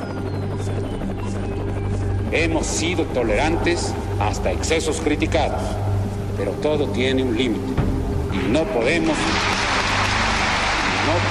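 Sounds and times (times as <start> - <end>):
helicopter flying overhead shining a green light: 0.0 - 11.2
speech: 2.3 - 7.8, 8.4 - 9.5.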